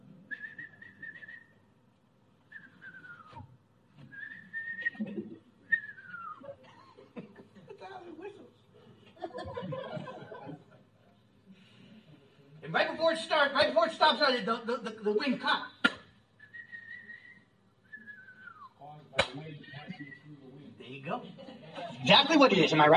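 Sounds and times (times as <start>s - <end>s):
person whistling imitating dove wings in flight: 0.3s - 1.6s, 2.5s - 3.5s, 4.1s - 5.0s, 5.7s - 6.4s, 16.4s - 18.8s
people chuckling: 4.6s - 11.3s, 19.6s - 20.3s, 21.1s - 22.0s
speech: 13.0s - 15.7s, 22.4s - 22.9s.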